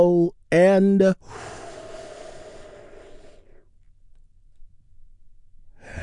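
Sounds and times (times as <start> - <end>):
speech: 0.0 - 1.6
breath: 1.2 - 3.8, 5.8 - 6.0
deep exhale during a guided relaxation breathing exercise: 1.2 - 3.8, 5.8 - 6.0.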